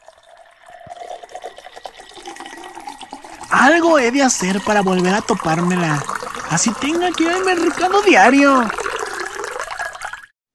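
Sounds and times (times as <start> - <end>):
water pouring into a glass in a kitchen: 0.0 - 10.3
speech: 0.9 - 1.2, 3.5 - 8.8.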